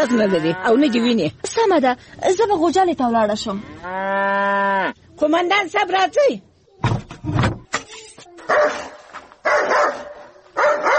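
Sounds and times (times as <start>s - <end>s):
speech: 0.0s - 7.5s, 8.5s - 8.9s
dog barking: 8.5s - 10.9s.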